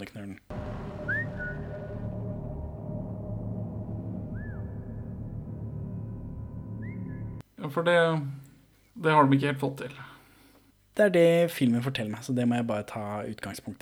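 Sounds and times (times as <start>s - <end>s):
speech: 0.0s - 0.6s, 7.6s - 8.4s, 9.0s - 10.1s, 11.0s - 13.8s
steady dense low background rumble: 0.5s - 7.4s
person whistling short sliding notes: 1.0s - 1.9s, 4.3s - 4.9s, 6.8s - 7.4s.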